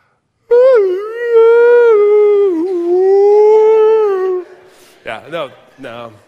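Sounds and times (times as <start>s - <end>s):
human voice imitating whale song: 0.5s - 4.7s
speech: 5.3s - 6.2s.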